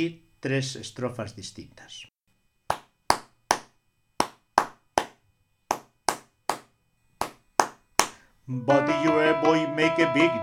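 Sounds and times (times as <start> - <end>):
speech: 0.0 - 2.1, 8.5 - 10.4
sharp hand claps opening a song: 2.7 - 8.3.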